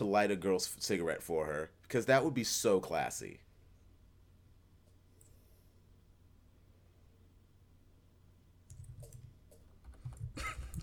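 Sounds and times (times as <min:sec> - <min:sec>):
speech: 0:00.0 - 0:03.4
typing on a computer keyboard: 0:08.7 - 0:10.8.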